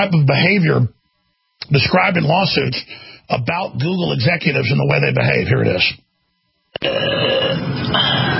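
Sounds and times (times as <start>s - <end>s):
speech: 0.0s - 1.0s, 1.6s - 6.0s, 6.8s - 8.1s
woman burping: 6.8s - 8.3s.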